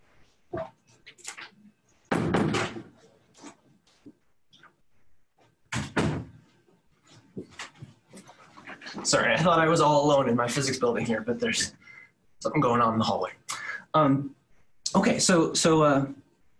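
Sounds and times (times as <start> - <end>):
door in a physics building pushed shut: 2.1 - 2.9, 5.7 - 6.3
speech: 9.0 - 11.8, 12.4 - 13.4, 14.0 - 14.4, 15.0 - 16.2.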